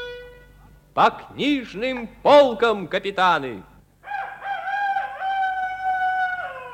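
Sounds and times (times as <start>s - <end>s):
speech: 1.0s - 3.7s
rooster crowing: 4.0s - 6.7s.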